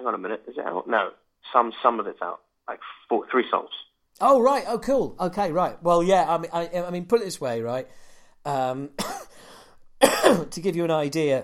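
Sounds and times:
speech: 0.0s - 9.3s, 10.0s - 11.4s
person coughing: 9.0s - 9.4s, 10.0s - 10.5s.

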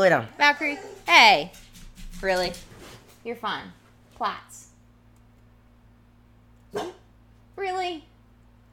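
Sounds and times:
speech: 0.0s - 1.6s, 2.2s - 4.6s, 6.7s - 7.0s, 7.6s - 8.1s
low hum: 0.0s - 8.7s
dog barking: 6.7s - 7.1s.

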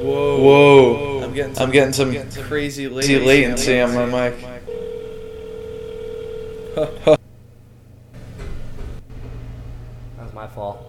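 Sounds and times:
speech: 0.0s - 4.7s, 6.8s - 7.2s
quiet low hum: 0.0s - 10.8s
telephone ringing tone of a phone call: 4.7s - 7.1s.

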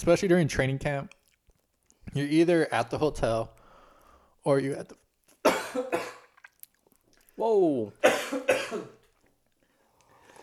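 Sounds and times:
speech: 0.0s - 1.2s, 2.1s - 3.6s, 4.4s - 5.0s, 5.7s - 6.1s, 7.4s - 9.0s
person coughing from chili caught in the throat: 5.4s - 6.3s, 8.0s - 9.1s.

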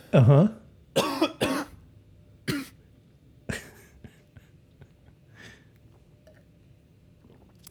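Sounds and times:
person coughing: 1.0s - 1.8s, 2.5s - 2.8s.

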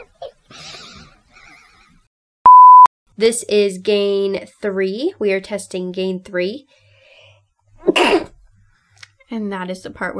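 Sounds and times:
speech: 3.2s - 6.8s, 9.3s - 10.1s
person sneezing: 7.8s - 8.4s.

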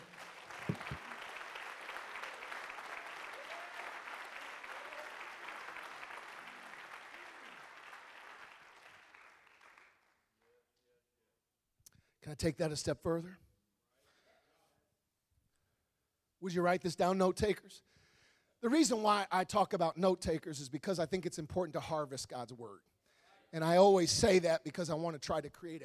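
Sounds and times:
crowd clapping hands in applause: 0.0s - 10.2s
speech: 12.3s - 13.5s, 16.4s - 18.0s, 18.6s - 22.9s, 23.5s - 25.8s.

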